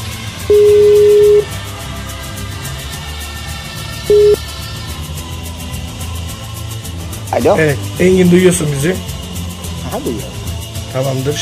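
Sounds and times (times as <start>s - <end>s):
ringing tone of an outgoing telephone call: 0.5s - 1.5s, 4.1s - 4.4s
speech: 7.4s - 9.1s, 9.9s - 10.3s, 10.9s - 11.4s.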